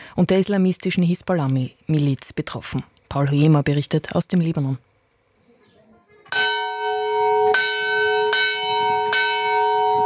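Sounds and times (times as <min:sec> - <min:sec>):
speech: 0:00.2 - 0:04.9
monastery church bell ringing: 0:06.3 - 0:10.0.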